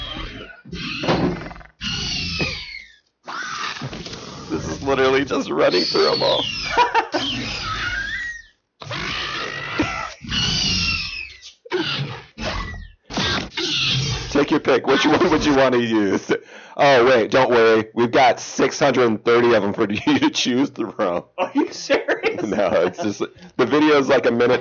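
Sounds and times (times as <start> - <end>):
velociraptor cry sound effect: 0.0 - 15.8
speech: 4.9 - 7.0, 14.7 - 24.5
laughter: 5.8 - 7.5, 14.8 - 16.4, 19.5 - 23.3.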